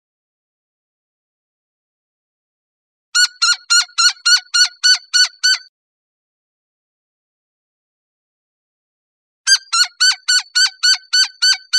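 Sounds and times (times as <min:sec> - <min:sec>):
Gila woodpecker giving harsh nasal calls: 0:03.2 - 0:05.7, 0:09.5 - 0:11.7.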